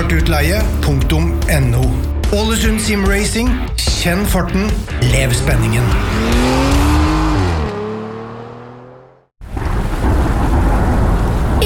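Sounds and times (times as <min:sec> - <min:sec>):
speech: 0:00.1 - 0:06.9
car engine winding down: 0:05.0 - 0:09.3
steady heavy rain: 0:09.4 - 0:11.6.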